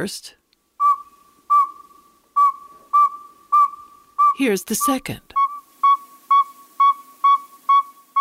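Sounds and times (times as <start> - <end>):
speech: 0.0 - 0.4, 4.4 - 5.4
male northern saw-whet owl advertising call of whistled toots: 0.8 - 8.2.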